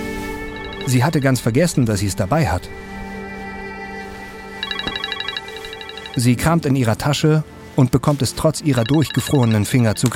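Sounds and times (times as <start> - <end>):
mobile phone ringing with a steady electronic tone: 0.5 - 1.2, 4.6 - 6.3, 8.7 - 9.7
rapid pulsing trill of bright beeps: 0.5 - 1.2, 4.6 - 6.2, 8.8 - 9.7
speech: 0.8 - 3.0, 6.2 - 10.1.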